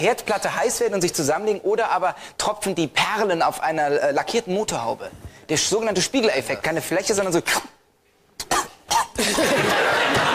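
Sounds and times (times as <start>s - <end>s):
speech: 0.0s - 7.7s
man coughing: 8.4s - 9.7s
laughter: 9.2s - 10.3s.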